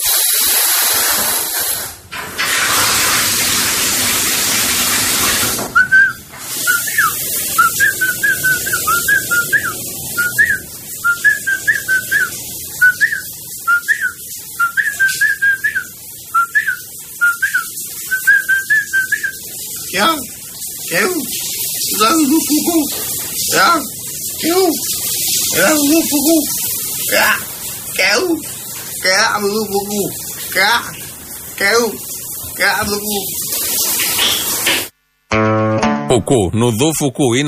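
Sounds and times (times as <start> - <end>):
shower water running: 0.0 - 35.0
man whistling a lively choppy tune in the shower: 5.8 - 19.4
speech: 32.6 - 33.4, 36.2 - 37.4.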